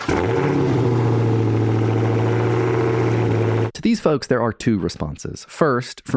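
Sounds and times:
Dodge Challenger Hellcat engine firing up and rumbling: 0:00.0 - 0:03.7
speech: 0:04.0 - 0:06.1.

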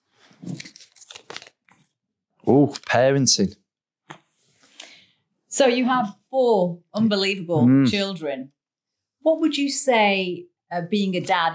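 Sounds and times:
sheet of paper being picked up and unfolded, crinkling and rustling: 0:00.4 - 0:02.0
speech: 0:02.5 - 0:03.6, 0:05.6 - 0:08.6, 0:09.2 - 0:11.5.

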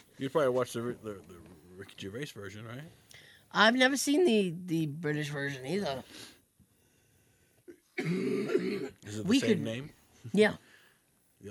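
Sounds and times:
speech: 0:00.2 - 0:06.4, 0:08.0 - 0:10.6
loud harsh cough after a throaty catch: 0:07.7 - 0:09.0.

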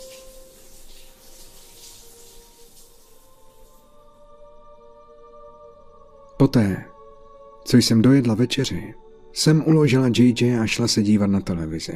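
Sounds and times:
shower water spraying: 0:00.0 - 0:04.0
speech: 0:06.4 - 0:06.9, 0:07.7 - 0:11.9.

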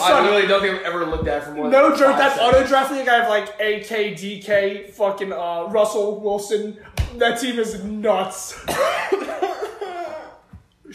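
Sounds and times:
speech: 0:00.0 - 0:09.4
person coughing roughly: 0:08.5 - 0:10.5.

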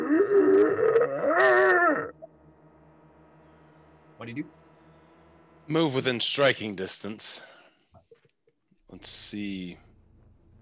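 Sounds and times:
human voice imitating the groan of a monster of bone shards and shrapnel: 0:00.0 - 0:02.2
speech: 0:04.2 - 0:04.6, 0:05.7 - 0:07.5, 0:08.9 - 0:09.8.

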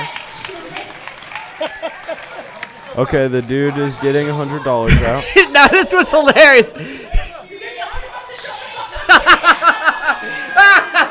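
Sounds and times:
crowd clapping and cheering: 0:00.0 - 0:04.8
laughter: 0:01.3 - 0:02.7, 0:04.3 - 0:11.0
speech: 0:01.6 - 0:07.1.

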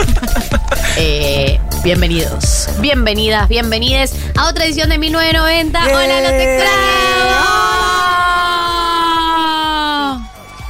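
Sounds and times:
laughter: 0:00.0 - 0:01.2
speech: 0:01.8 - 0:07.7
hosts shouting loudly: 0:05.8 - 0:10.1.

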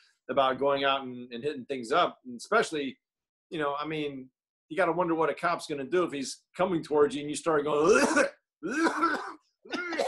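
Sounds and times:
speech: 0:00.3 - 0:09.2
forced phlegmy wet coughs from a weed smoker: 0:07.8 - 0:10.0.

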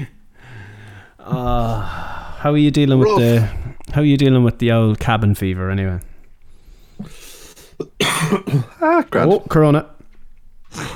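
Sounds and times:
speech: 0:01.2 - 0:06.1, 0:07.0 - 0:09.9
harsh rough raspy coughs: 0:03.0 - 0:03.6, 0:07.8 - 0:08.8.

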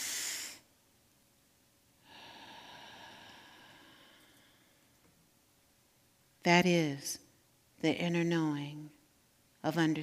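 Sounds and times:
person drawing a deep breath into the stomach: 0:02.0 - 0:05.0
speech: 0:06.4 - 0:07.2, 0:07.8 - 0:09.0, 0:09.6 - 0:10.0.

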